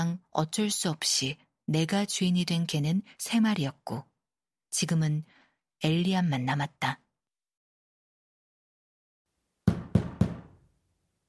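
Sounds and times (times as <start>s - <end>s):
speech: 0.0s - 4.1s, 4.7s - 7.0s
firm knocks on a door: 9.6s - 10.6s.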